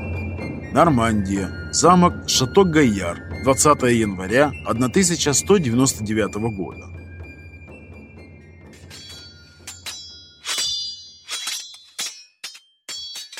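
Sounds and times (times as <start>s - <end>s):
speech: 0.7s - 7.0s
heavy blade striking flat against a sword: 8.7s - 13.3s.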